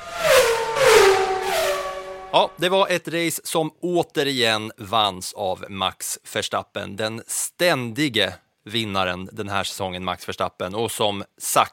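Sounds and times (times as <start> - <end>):
Formula 1 car engines screaming past: 0.0 - 2.4
speech: 2.3 - 11.7.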